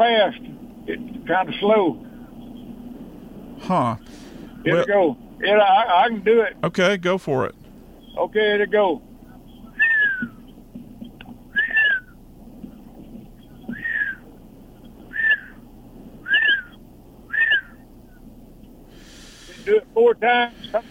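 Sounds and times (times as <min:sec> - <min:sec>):
speech: 0:00.0 - 0:02.1, 0:03.6 - 0:07.6, 0:08.2 - 0:09.1, 0:20.1 - 0:20.8
burst of voices: 0:03.6 - 0:04.9
person whistling a bird-like call imitating a mockingbird: 0:09.8 - 0:10.4, 0:11.5 - 0:12.2, 0:13.7 - 0:14.2, 0:15.1 - 0:15.6, 0:16.3 - 0:17.8.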